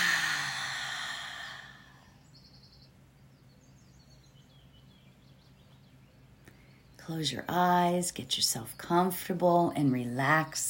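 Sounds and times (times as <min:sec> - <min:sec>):
deep breath let out in a long airy sigh: 0:00.0 - 0:02.2
speech: 0:07.1 - 0:10.6.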